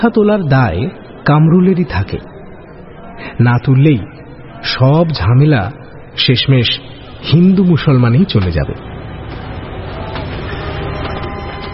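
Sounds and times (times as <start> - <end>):
speech: 0.0 - 2.3, 3.2 - 8.9
departing train rumbling: 8.3 - 11.7.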